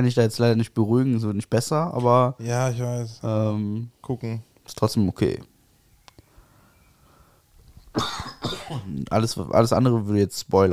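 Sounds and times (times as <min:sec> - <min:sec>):
speech: 0:00.0 - 0:05.5, 0:08.0 - 0:10.7
faint clicks: 0:06.0 - 0:06.3
person coughing into the microphone: 0:08.0 - 0:09.0.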